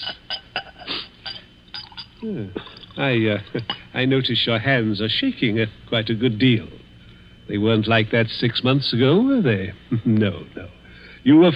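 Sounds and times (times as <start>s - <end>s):
glassware clinking: 0.0s - 3.9s
brandy being poured into a glass: 1.7s - 3.0s
speech: 2.2s - 6.8s, 7.5s - 11.5s.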